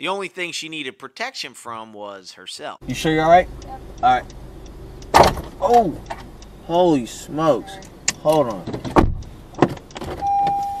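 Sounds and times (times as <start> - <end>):
speech: 0.0 - 4.4, 5.2 - 9.0
sharp knock and rattling clatter of a car door closing: 5.1 - 5.6, 8.7 - 10.2.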